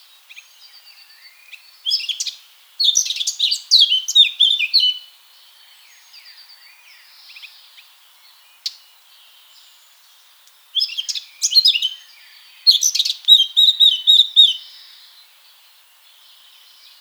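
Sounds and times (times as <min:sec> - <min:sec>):
Eurasian blackcap Sylvia atricapilla song: 0:01.9 - 0:05.1, 0:10.8 - 0:14.8.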